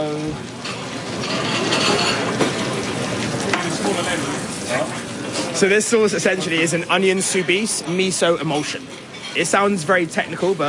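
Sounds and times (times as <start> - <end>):
potatoes frying in a deep fryer for a restaurant dish: 0.0 - 10.6
speech: 5.6 - 10.6.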